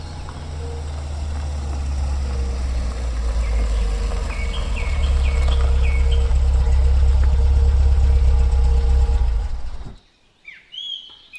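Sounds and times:
birds chirping outdoors: 0.0s - 11.3s
struggling car engine idling roughly: 3.1s - 10.0s.

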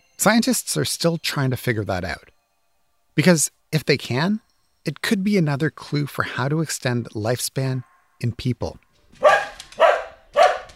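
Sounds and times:
speech: 0.2s - 2.3s, 3.2s - 8.8s
dog barking: 9.2s - 10.7s.

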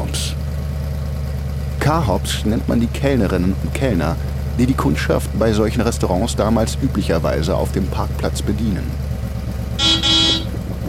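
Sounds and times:
car engine idling: 0.0s - 10.8s
speech: 1.9s - 9.0s
car horn honking outside a carhop restaurant: 9.8s - 10.8s.

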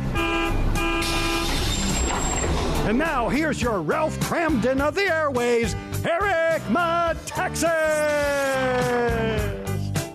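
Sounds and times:
bus horn tooting: 0.0s - 1.9s
speech: 2.9s - 9.6s.

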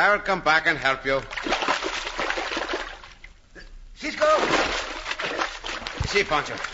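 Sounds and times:
speech: 0.0s - 1.6s, 4.0s - 5.4s, 6.1s - 6.7s
water splashing in a flooded passage: 1.1s - 3.4s, 4.2s - 6.7s.

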